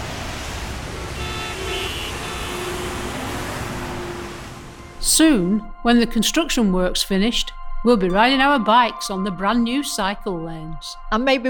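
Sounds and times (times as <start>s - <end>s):
cars driving along a busy road: 0.0s - 5.7s
faint car horn toots: 1.0s - 5.1s
speech: 5.0s - 11.4s.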